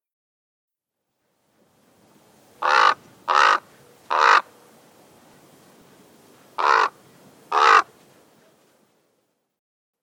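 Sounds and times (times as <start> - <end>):
Chihuahuan raven giving harsh croaking caws: 2.6 - 4.5, 6.6 - 7.9.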